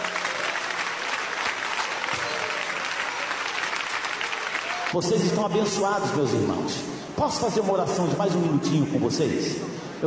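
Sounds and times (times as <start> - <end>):
church congregation clapping in praise during a worship service: 0.0 - 5.0
speech: 4.9 - 10.0.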